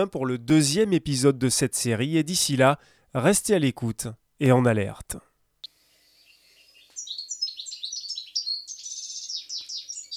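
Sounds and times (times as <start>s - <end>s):
speech: 0.0s - 5.3s
European goldfinch twittering: 6.1s - 10.1s.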